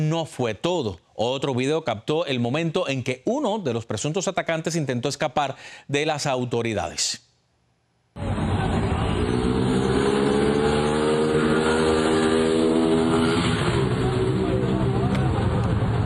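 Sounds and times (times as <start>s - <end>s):
speech: 0.0s - 7.3s
motorcycle engine roaring and accelerating hard: 8.2s - 16.0s.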